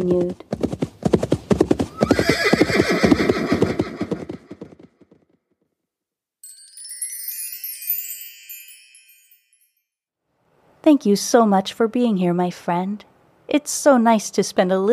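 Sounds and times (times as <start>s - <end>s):
speech: 0.0s - 0.6s, 10.9s - 14.9s
horse hooves clip-clopping at a steady trot: 0.0s - 5.3s
horse giving a loud high-pitched whinny: 1.9s - 4.6s.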